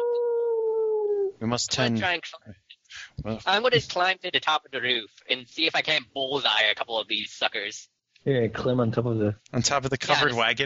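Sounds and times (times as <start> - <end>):
howl: 0.0 - 1.4
speech: 1.4 - 10.6.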